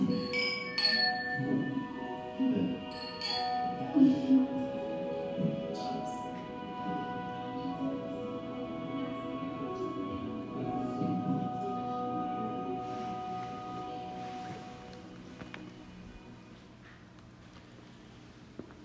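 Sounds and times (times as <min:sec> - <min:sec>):
glasses clinking in a toast: 0:00.0 - 0:03.9
low murmur of chatter: 0:00.0 - 0:15.2.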